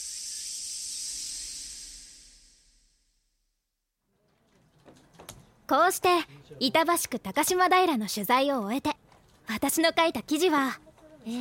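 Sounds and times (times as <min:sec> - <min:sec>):
dense chorus of cicadas buzzing: 0:00.0 - 0:02.8
speech: 0:05.7 - 0:11.4.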